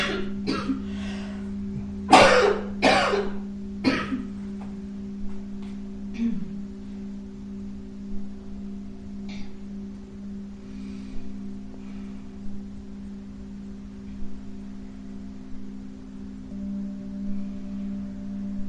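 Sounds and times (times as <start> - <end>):
loud forceful coughing: 0.0 - 0.8, 2.1 - 4.3
steady low electrical hum: 0.0 - 18.6.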